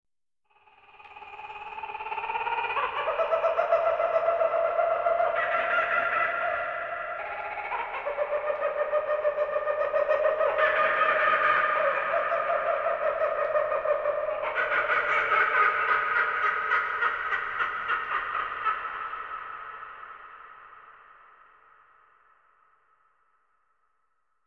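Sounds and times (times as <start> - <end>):
kookaburra calling: 0.9 - 19.7.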